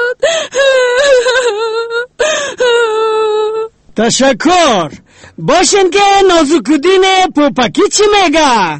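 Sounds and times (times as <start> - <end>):
person crying with joy: 0.0 - 3.7
speech: 4.0 - 8.7.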